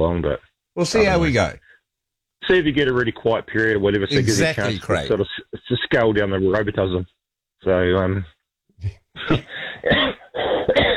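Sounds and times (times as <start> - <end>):
speech: 0.0 - 1.7, 2.4 - 10.9
person coughing over a phone line: 9.2 - 10.9.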